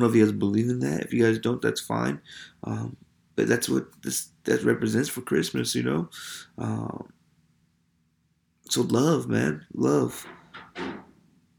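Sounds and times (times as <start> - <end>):
speech: 0.0 - 7.2, 8.7 - 11.1
low room hum: 0.0 - 11.5
door thud: 10.2 - 11.2.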